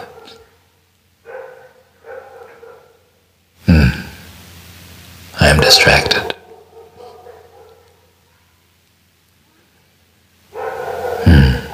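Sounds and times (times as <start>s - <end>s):
dog barking in short sharp bursts: 0.0s - 3.2s, 6.1s - 8.6s, 10.5s - 11.7s
speech: 5.5s - 6.4s.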